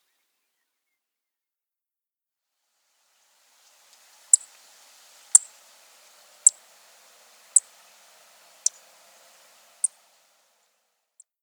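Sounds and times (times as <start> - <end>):
vesper sparrow singing: 3.6 - 10.4.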